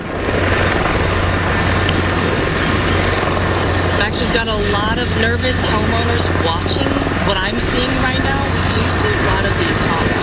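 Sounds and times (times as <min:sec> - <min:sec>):
helicopters flying overhead: 0:00.0 - 0:10.2
speech: 0:04.4 - 0:10.2.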